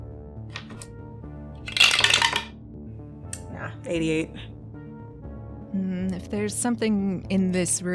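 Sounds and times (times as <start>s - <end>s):
dice rattling across a surface: 0.6s - 0.8s, 1.6s - 2.5s
speech: 3.6s - 4.5s, 5.8s - 7.9s.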